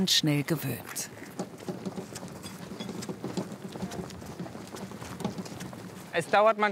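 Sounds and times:
speech: 0.0 - 1.2, 6.2 - 6.7
horse hooves clip-clopping on a hard surface: 0.3 - 6.7
horse-drawn carriage rolling: 1.1 - 6.7.

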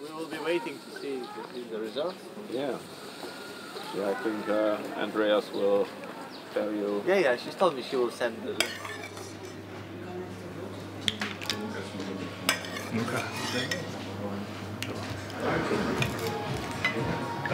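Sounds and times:
conversation from several people in a restaurant: 0.0 - 17.5
cutlery and dishes clinking in a restaurant in Palanga: 8.6 - 9.6, 12.4 - 14.1, 15.7 - 17.1.

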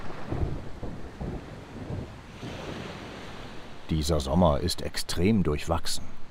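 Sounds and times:
heavy low thunder rumbling: 0.0 - 3.9
blustery wind: 0.0 - 6.2
rain in a summer thunderstorm: 0.0 - 6.2
speech: 3.9 - 6.2.

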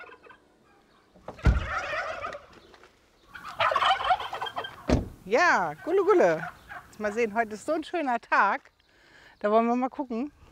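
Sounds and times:
turkeys gobbling in greeting: 0.0 - 7.4
faint outdoor ambience: 0.0 - 10.5
speech: 5.3 - 8.7, 9.4 - 10.4.

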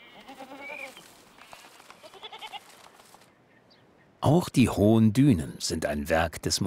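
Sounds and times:
soft outdoor hiss: 0.0 - 6.6
goats bleating: 0.1 - 1.0, 2.0 - 2.8
speech: 4.2 - 6.6.

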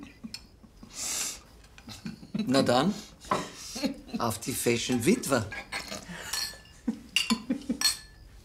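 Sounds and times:
dishes and cutlery clinking during washing up: 0.3 - 0.6, 1.6 - 4.2, 4.9 - 8.3
speech: 2.5 - 3.5, 4.2 - 5.7.

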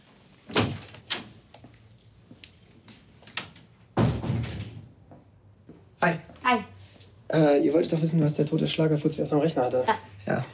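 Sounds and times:
door opening and closing with latch clicks and rattle: 0.5 - 1.4, 3.2 - 5.0
speech: 7.3 - 10.4.

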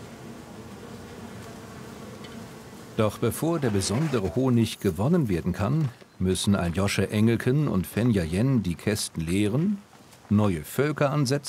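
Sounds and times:
honeybees buzzing around hives at a bee institute: 0.0 - 6.4
speech: 3.0 - 11.4.

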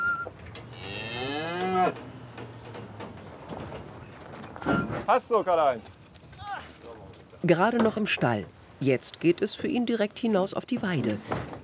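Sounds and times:
breeding bull bellowing inside a livestock trailer: 0.6 - 2.6
speech: 1.8 - 2.1, 5.1 - 6.0, 7.4 - 11.5.

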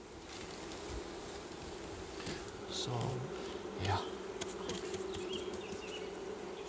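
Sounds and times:
swarm of many honeybees buzzing: 0.0 - 6.6
speech: 2.7 - 4.2.

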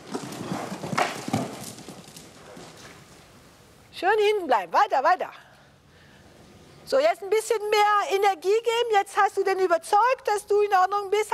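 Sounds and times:
horse led on a rope walking with big strides: 0.0 - 3.2
speech: 4.0 - 5.4, 6.9 - 11.3.

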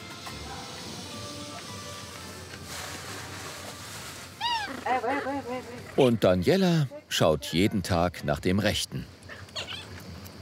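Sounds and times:
steady outdoor hiss: 0.0 - 10.3
speech: 4.9 - 9.1
street cat meowing in Kotor: 9.6 - 9.9.

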